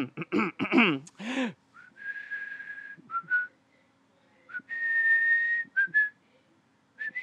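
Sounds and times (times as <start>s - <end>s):
person whistling a short tune: 1.8s - 3.5s, 4.5s - 6.2s, 7.0s - 7.2s.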